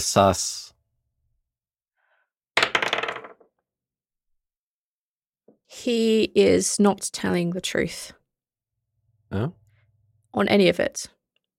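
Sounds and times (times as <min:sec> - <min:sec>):
speech: 0:00.0 - 0:00.6, 0:05.8 - 0:08.2, 0:09.3 - 0:09.6, 0:10.3 - 0:11.2
dice clattering across a hard tabletop: 0:02.6 - 0:03.5.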